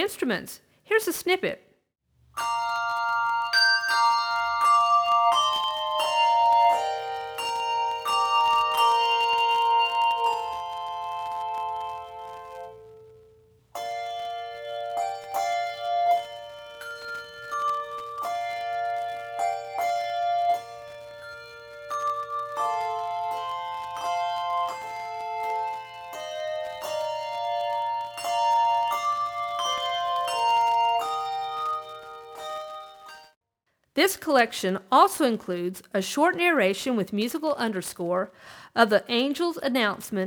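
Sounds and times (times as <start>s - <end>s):
speech: 0.0s - 1.7s, 34.0s - 40.2s
handbell choir ringing a carol on two octaves of bells: 2.4s - 13.2s, 13.8s - 33.4s.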